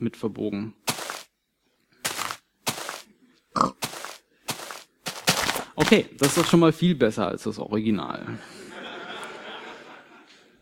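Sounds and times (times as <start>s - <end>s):
speech: 0.0s - 0.8s, 5.9s - 8.6s
pig grunting: 3.6s - 4.0s
laughter: 8.3s - 10.6s.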